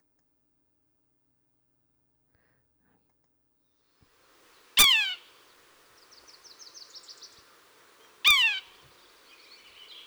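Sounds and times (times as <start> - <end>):
faint chattering: 4.6 - 10.0
red-breasted sapsucker harsh squealing calls: 4.6 - 10.0.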